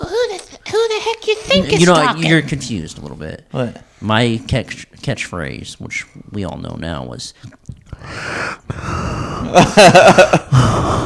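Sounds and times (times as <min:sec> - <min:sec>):
speech: 0:00.9 - 0:11.0
person taking loud rasping gasping breaths: 0:07.9 - 0:09.6, 0:10.4 - 0:11.0
laughter: 0:09.4 - 0:10.6.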